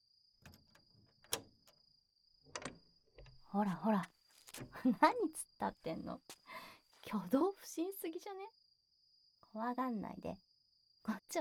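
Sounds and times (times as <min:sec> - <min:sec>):
door handling rattles: 0:00.4 - 0:01.8, 0:02.5 - 0:03.5
speech: 0:03.5 - 0:04.1, 0:04.8 - 0:06.4, 0:07.1 - 0:08.6, 0:09.5 - 0:10.5, 0:11.1 - 0:11.3.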